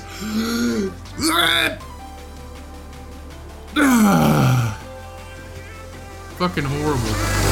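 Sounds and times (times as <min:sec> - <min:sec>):
man vocally imitating straining grunts of a man on the toilet: 0:00.0 - 0:01.8, 0:03.7 - 0:04.9
speech: 0:00.2 - 0:01.8, 0:06.4 - 0:07.4.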